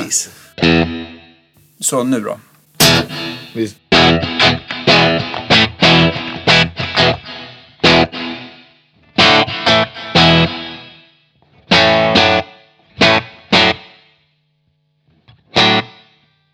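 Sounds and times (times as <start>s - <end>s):
speech: 0.1s - 1.2s, 1.8s - 4.4s
loud electric guitar chords through an effects pedal with slapback-like echo: 0.6s - 1.4s, 2.8s - 14.2s, 15.1s - 16.4s.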